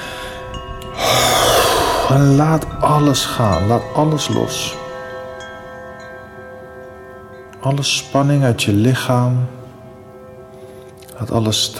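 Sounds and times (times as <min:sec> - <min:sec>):
deep breath in and forceful exhale in a breathing exercise: 0:00.0 - 0:02.2
steady tonal background: 0:00.0 - 0:11.7
speech: 0:02.1 - 0:04.8, 0:07.6 - 0:09.6, 0:11.2 - 0:11.7.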